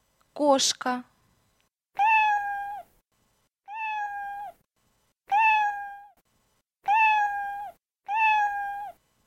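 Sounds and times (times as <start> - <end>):
cat: 2.0 - 2.9, 3.7 - 4.6, 5.3 - 6.2, 6.8 - 9.0.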